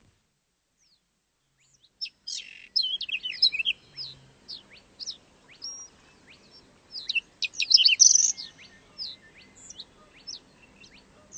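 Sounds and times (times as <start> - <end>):
rare birds singing and chirping in a nature reserve: 0.8 - 11.3.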